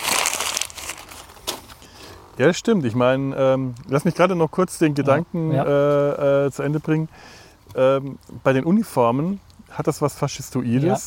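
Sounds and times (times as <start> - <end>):
paper rustling and crinkling: 0.0 - 1.8
speech: 2.4 - 11.0.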